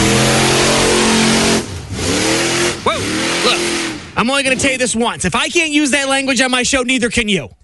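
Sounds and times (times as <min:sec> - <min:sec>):
big monster truck engine revving loudly: 0:00.0 - 0:05.2
speech: 0:04.2 - 0:07.6.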